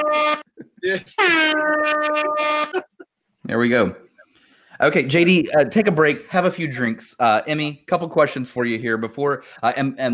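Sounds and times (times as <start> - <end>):
air horn sound effect blasts: 0.0 - 0.5, 1.2 - 2.8
speech: 0.1 - 2.8, 3.5 - 4.0, 4.8 - 10.1.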